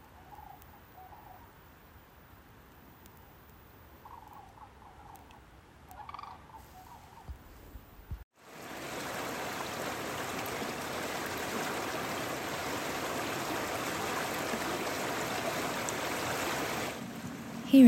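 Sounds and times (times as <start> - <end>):
turkey gobbling: 4.0 - 7.3
flowing stream water rushing: 8.4 - 17.8.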